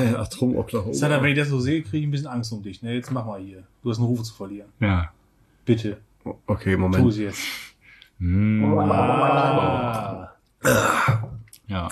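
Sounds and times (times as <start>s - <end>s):
speech: 0.0s - 11.9s
person gargling a mouthful of liquid: 8.2s - 11.4s.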